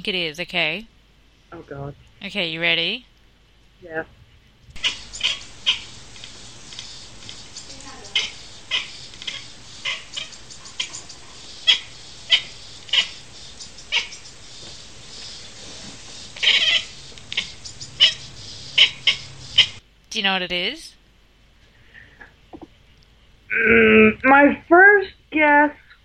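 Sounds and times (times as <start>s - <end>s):
speech: 0.0s - 0.9s, 1.5s - 3.1s, 3.8s - 4.2s, 20.2s - 20.9s, 23.5s - 25.8s
cat chattering in short sharp clicking bursts: 4.8s - 19.8s.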